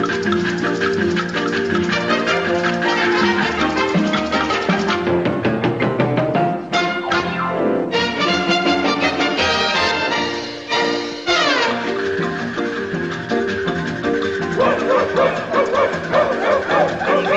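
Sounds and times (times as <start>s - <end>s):
lively big-band music: 0.0s - 17.3s
small dog yapping: 14.6s - 17.3s.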